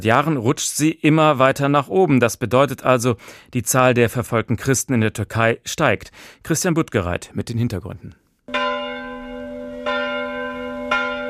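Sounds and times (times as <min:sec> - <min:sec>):
speech: 0:00.0 - 0:08.6
church bells ringing in Istanbul Turkey: 0:08.5 - 0:11.2.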